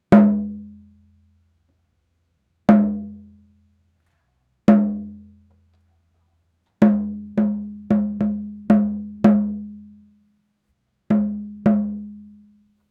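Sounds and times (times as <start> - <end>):
dabakan drum playing world music: 0.1 - 0.8, 2.7 - 3.2, 4.7 - 5.3, 6.8 - 9.8, 11.1 - 12.3.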